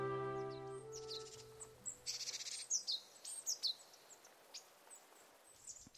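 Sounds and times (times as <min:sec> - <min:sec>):
bird singing high chirps and trills: 0:00.0 - 0:04.0.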